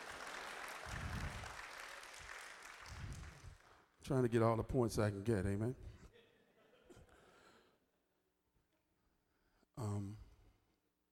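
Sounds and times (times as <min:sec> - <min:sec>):
crowd applauding: 0:00.0 - 0:03.8
speech: 0:04.1 - 0:05.9.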